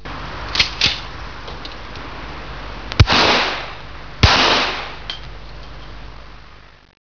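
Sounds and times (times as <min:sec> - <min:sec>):
45 ACP gunshots: 0:03.0 - 0:05.1.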